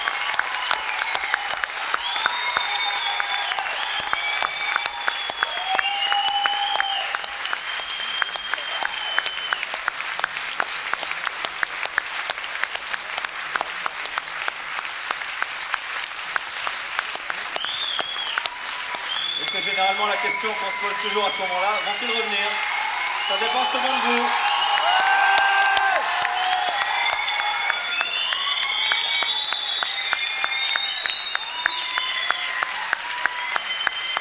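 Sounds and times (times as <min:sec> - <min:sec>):
whistles and cheers from the audience: 0:00.0 - 0:10.0, 0:17.4 - 0:34.2
large audience applause: 0:00.0 - 0:34.2
speech: 0:20.3 - 0:22.7, 0:23.3 - 0:24.4.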